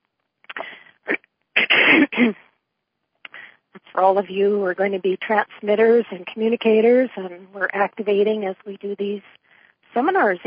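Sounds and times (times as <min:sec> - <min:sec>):
person clearing throat close to the mic: 0:01.6 - 0:02.4
speech: 0:01.9 - 0:02.4, 0:04.0 - 0:09.4, 0:10.0 - 0:10.4.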